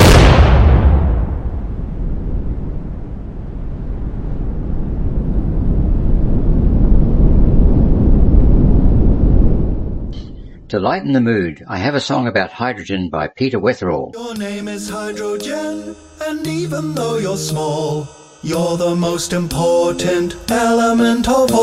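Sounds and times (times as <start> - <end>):
hydrogen bomb explosion boom: 0.0 - 10.7
rushing wind from the pressure wave of a hydrogen bomb: 1.9 - 10.7
speech: 10.8 - 21.6.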